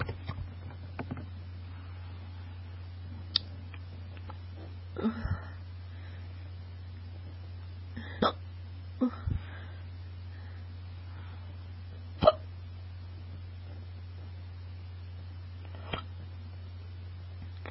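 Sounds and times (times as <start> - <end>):
low hum: 0.0 - 17.6
speech: 5.0 - 5.4
person hiccuping: 8.0 - 8.4, 12.2 - 12.5.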